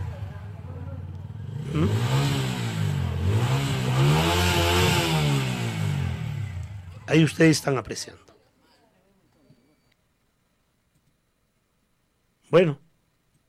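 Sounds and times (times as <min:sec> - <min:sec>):
motorcycle engines revving and idling at night in the city: 0:00.0 - 0:07.6
speech: 0:07.1 - 0:08.3, 0:12.5 - 0:12.8.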